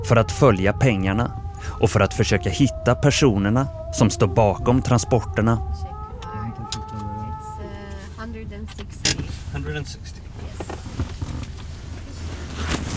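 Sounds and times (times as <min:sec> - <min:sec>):
speech: 0:00.0 - 0:05.9, 0:09.8 - 0:10.1
call to prayer from outdoor loudspeakers: 0:00.0 - 0:08.2
low rumble: 0:00.0 - 0:09.0
car door and seat clunks and creaks: 0:10.4 - 0:12.9.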